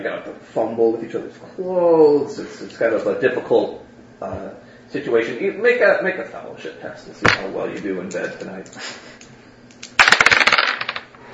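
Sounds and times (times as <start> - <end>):
speech: 0.0 - 9.3
dice tumbling across a hard surface: 9.8 - 11.1.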